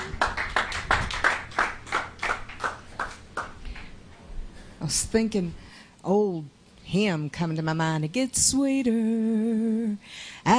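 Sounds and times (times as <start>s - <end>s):
crowd clapping hands: 0.0s - 3.9s
speech: 4.9s - 10.5s.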